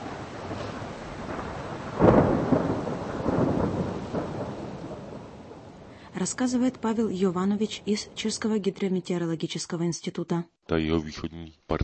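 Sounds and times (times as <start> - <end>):
steady hiss of rain: 0.0 - 8.4
thunder rumbling outdoors: 0.0 - 8.8
speech: 6.2 - 11.8.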